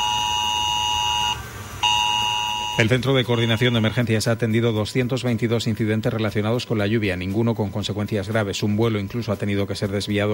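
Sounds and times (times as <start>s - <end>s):
emergency red alert tone on mobile phones during a heavy-rain red alert: 0.0s - 4.0s
speech: 2.8s - 10.3s.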